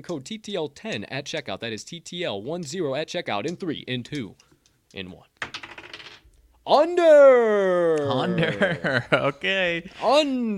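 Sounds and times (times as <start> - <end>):
speech: 0.0 - 5.3, 6.6 - 10.5
dice clattering and tumbling across a hard surface: 5.4 - 6.3
laughter: 8.0 - 9.4.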